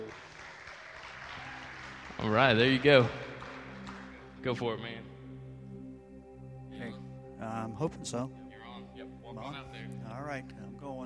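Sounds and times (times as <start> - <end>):
audience applause: 0.0 - 4.3
speech: 2.2 - 3.2, 4.4 - 5.2, 7.4 - 8.4, 9.0 - 11.0.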